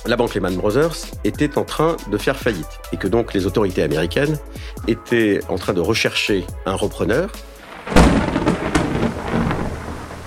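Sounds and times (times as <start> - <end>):
speech: 0.0 - 8.3
heavy rain in New York on a Friday evening: 7.6 - 10.2
thunder cracking and rumbling: 7.7 - 10.2.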